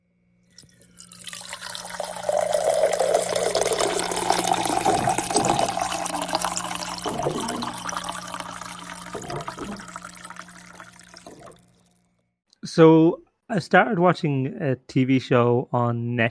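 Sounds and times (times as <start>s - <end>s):
water pouring into a glass: 0.5s - 11.9s
speech: 12.8s - 16.2s.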